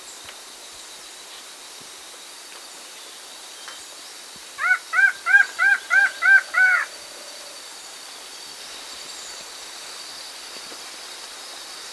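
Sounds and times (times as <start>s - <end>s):
upland antshrike calling nasal arched notes in South America: 4.6s - 7.4s.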